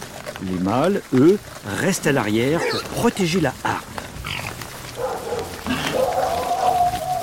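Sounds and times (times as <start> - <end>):
speech: 0.4 - 3.8
dogs barking and yelping: 2.5 - 3.1, 4.0 - 7.2.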